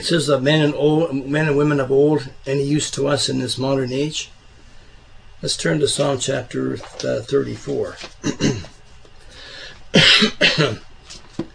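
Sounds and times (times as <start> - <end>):
speech: 0.0 - 4.4, 5.4 - 8.8, 9.9 - 11.5
harsh chesty coughs: 8.2 - 8.8, 9.9 - 10.9
throat clearing: 8.2 - 8.8, 10.0 - 10.9.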